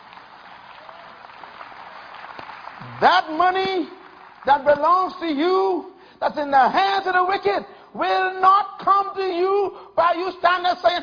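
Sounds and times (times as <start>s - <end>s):
audience clapping: 0.0s - 5.2s
speech: 3.0s - 11.0s.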